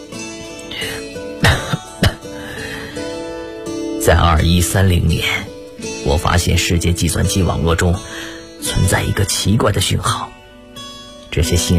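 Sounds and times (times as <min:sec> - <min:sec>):
person coughing: 0:01.4 - 0:02.4
speech: 0:04.0 - 0:10.3, 0:11.4 - 0:11.7.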